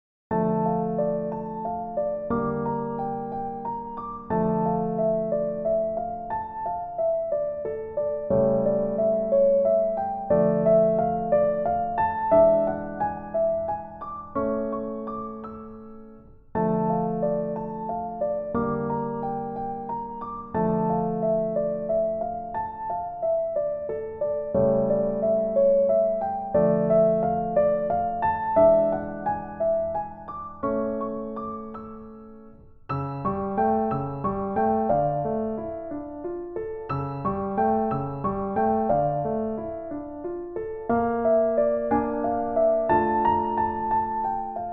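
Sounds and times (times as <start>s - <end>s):
solo piano etude: 0.3s - 44.7s.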